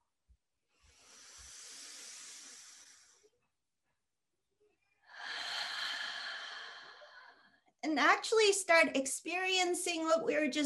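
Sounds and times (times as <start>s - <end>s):
deep slow breathing: 0.7s - 3.4s, 5.1s - 7.7s
speech: 7.9s - 10.6s.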